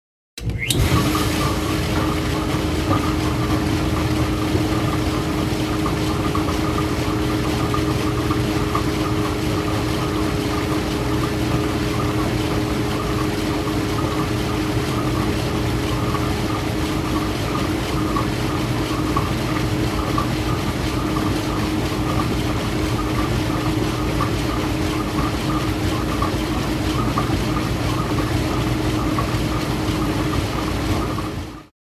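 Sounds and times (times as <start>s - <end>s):
dishwasher switching on and running: 0.4s - 31.7s.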